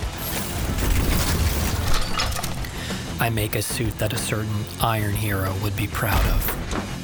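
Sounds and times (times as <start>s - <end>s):
computer terminal exploding into flame in a video game: 0.2s - 2.9s
speech: 3.2s - 6.8s.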